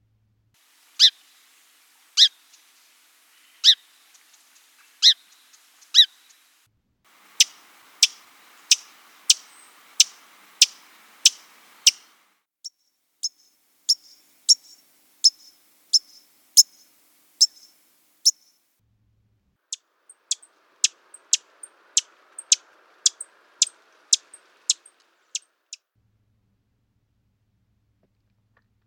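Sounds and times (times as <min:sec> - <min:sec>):
Song, Fox, White-crowned and Lincoln's Sparrow chip calls: 0:00.9 - 0:06.5, 0:07.2 - 0:18.6, 0:20.1 - 0:25.5.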